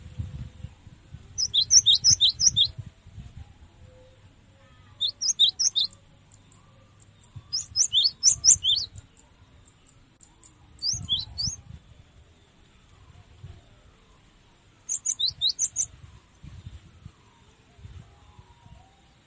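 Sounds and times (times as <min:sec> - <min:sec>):
cinereous tit singing tutoring song: 0:01.4 - 0:02.7, 0:05.0 - 0:06.0, 0:07.5 - 0:08.9, 0:10.8 - 0:11.6, 0:14.9 - 0:15.9.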